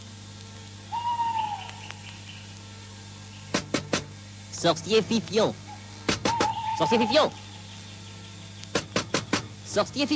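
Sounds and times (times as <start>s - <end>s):
owl giving a drawn-out wavering hoot at night: 0.9s - 3.9s, 5.6s - 9.5s
sharp knocks: 3.5s - 4.1s, 6.1s - 6.6s, 8.7s - 9.5s
speech: 4.6s - 5.6s, 6.8s - 7.4s, 9.8s - 10.1s.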